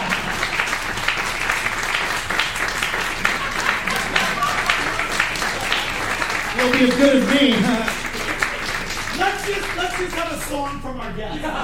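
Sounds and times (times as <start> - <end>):
audience applauding: 0.0 - 10.9
laughter: 2.7 - 9.8, 11.1 - 11.6
speech: 6.8 - 7.9, 9.5 - 11.6.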